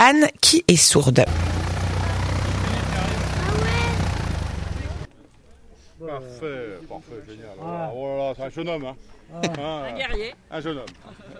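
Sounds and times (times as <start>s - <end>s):
speech: 0.1s - 1.8s, 6.1s - 11.3s
indistinct voices: 0.7s - 5.1s
propeller-plane engine droning at an airfield: 1.3s - 5.1s.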